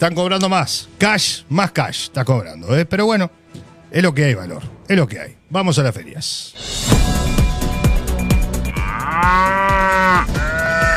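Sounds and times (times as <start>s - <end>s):
speech: 0.0s - 7.4s, 9.2s - 10.5s
cow mooing with a rising harmonic bellow: 8.7s - 10.9s.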